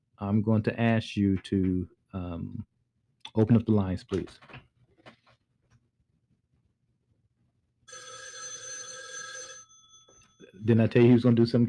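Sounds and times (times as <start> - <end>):
speech: 0.2 - 2.7, 3.4 - 4.6, 10.6 - 11.6
old-fashioned telephone bell ringing: 7.9 - 10.6.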